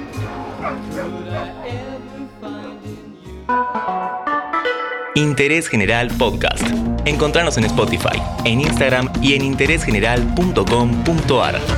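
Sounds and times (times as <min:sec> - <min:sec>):
several dogs barking with yips and a whimper: 0:00.0 - 0:02.1
steady music: 0:00.0 - 0:11.7
speech: 0:00.6 - 0:11.7.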